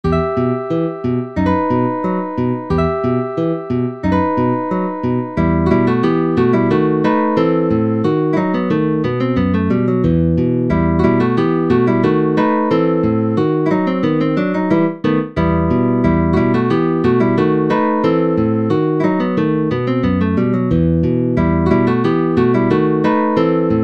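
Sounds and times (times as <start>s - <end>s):
guitar solo in E minor: 0.0s - 23.8s.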